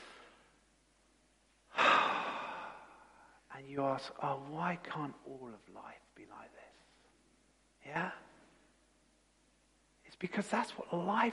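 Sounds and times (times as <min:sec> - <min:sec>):
deep breath: 0:00.0 - 0:00.6, 0:01.7 - 0:03.4
speech: 0:03.6 - 0:06.8, 0:07.8 - 0:08.3, 0:10.1 - 0:11.3.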